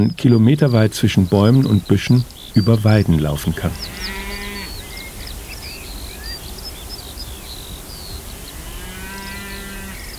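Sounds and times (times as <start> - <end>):
speech: 0.0 - 4.1
birdsong chirping overhead: 0.0 - 10.1
constant outdoor hiss: 0.0 - 10.1
Galloway cattle mooing on a large open pasture: 3.5 - 4.8, 8.6 - 10.1.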